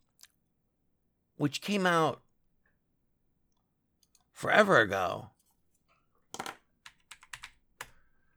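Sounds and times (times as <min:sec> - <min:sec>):
speech: 0:01.4 - 0:02.2, 0:04.4 - 0:05.3
typing on a computer keyboard in a video game: 0:06.4 - 0:08.1.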